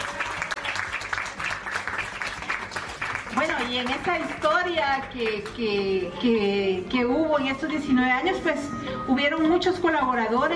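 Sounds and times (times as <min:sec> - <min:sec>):
crowd clapping: 0:00.0 - 0:06.0
speech: 0:03.6 - 0:10.5.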